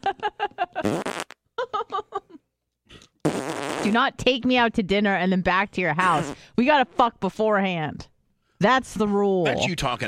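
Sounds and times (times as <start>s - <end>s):
loud raspy fart: 0.8s - 1.4s, 3.2s - 4.0s
speech: 3.9s - 10.0s.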